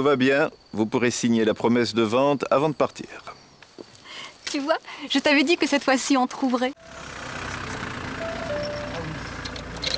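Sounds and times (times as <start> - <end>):
speech: 0.0 - 3.9, 4.5 - 7.1
road noise: 5.6 - 9.9
car engine rumble while pulling up to park: 6.8 - 9.9.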